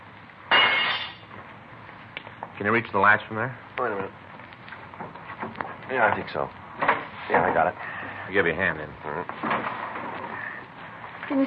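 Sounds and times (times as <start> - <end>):
falling glass shards tinkling: 0.5 - 1.2
window glass pane breaking: 0.5 - 1.2
speech: 2.6 - 4.2, 5.9 - 6.6, 7.3 - 9.7, 11.3 - 11.4.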